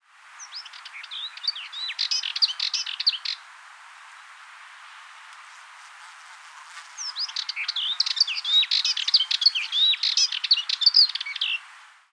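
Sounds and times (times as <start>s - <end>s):
Subalpine warbler Sylvia cantillans singing scratchy twittering song: 0.4s - 3.4s, 6.5s - 11.7s.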